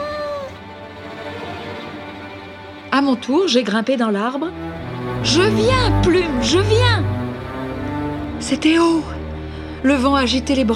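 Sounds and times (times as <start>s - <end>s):
kitten stuck up a tree meowing: 0.0s - 0.6s
speech: 3.0s - 7.2s, 8.4s - 9.2s, 9.8s - 10.7s.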